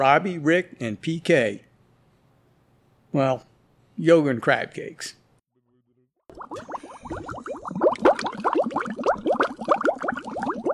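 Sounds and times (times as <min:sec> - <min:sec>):
speech: 0:00.0 - 0:01.7, 0:03.1 - 0:05.2
water bubbling and churning in a hot tub: 0:06.3 - 0:10.7.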